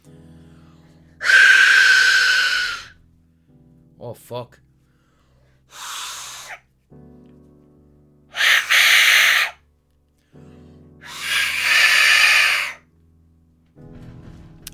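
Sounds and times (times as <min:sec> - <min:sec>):
Aztec death whistle being blown: 0:01.2 - 0:03.0, 0:08.4 - 0:09.6, 0:11.0 - 0:12.8
speech: 0:04.0 - 0:04.6.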